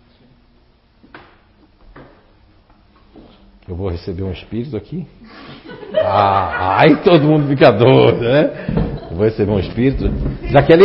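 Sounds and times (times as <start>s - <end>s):
low steady room hum: 0.0s - 10.8s
speech: 3.7s - 10.8s
laughter: 5.3s - 9.4s
chair scraping into place: 9.6s - 10.6s.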